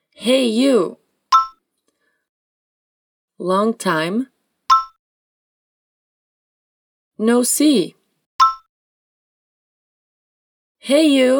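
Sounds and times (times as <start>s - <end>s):
speech: 0.2s - 1.0s, 3.4s - 4.3s, 7.2s - 8.0s, 10.8s - 11.3s
little bell ding: 1.4s - 1.6s, 4.7s - 5.0s, 8.4s - 8.6s.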